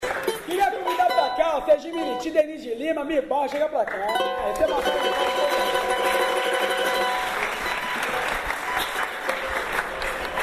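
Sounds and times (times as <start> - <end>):
crowd applauding: 0.0 - 1.4, 3.6 - 10.4
speech: 1.6 - 6.3.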